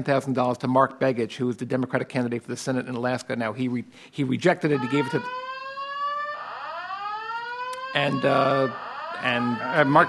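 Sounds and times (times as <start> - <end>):
speech: 0.0 - 5.5, 7.9 - 10.0
building fire alarm with rising whooping electronic tone: 4.7 - 10.0.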